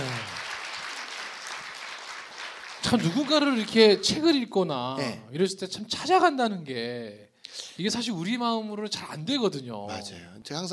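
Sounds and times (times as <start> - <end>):
audience applause: 0.0 - 4.0
speech: 2.9 - 10.7.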